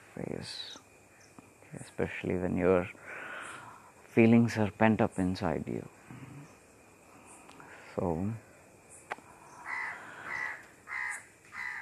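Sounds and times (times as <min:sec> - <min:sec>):
light steady hiss: 0:00.0 - 0:11.8
speech: 0:00.2 - 0:00.8, 0:01.7 - 0:03.2, 0:04.2 - 0:06.0, 0:08.0 - 0:08.4
birds giving harsh crow-like caws: 0:09.6 - 0:11.8.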